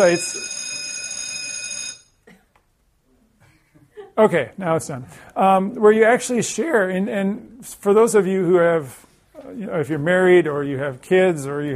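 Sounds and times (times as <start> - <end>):
speech: 0.0 - 0.6, 4.2 - 11.7
bell ringing: 0.0 - 2.1.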